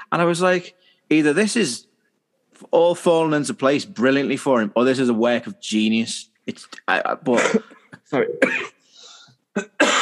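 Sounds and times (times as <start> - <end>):
speech: 0.1 - 1.9, 2.5 - 8.8, 9.6 - 9.9
harsh raspy coughing fit with throat-clearing: 7.3 - 9.9
wheezy breath in: 8.8 - 9.4.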